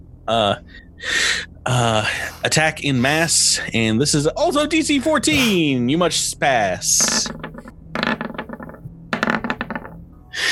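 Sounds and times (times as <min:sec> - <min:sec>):
speech: 0:00.3 - 0:07.4
dice rattling and clattering across a hard surface: 0:07.0 - 0:10.0.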